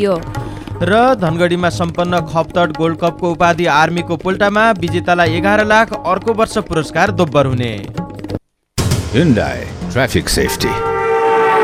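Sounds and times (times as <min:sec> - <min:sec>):
speech: 0:00.0 - 0:08.0, 0:09.1 - 0:10.9
vehicle horn blaring: 0:10.4 - 0:11.6.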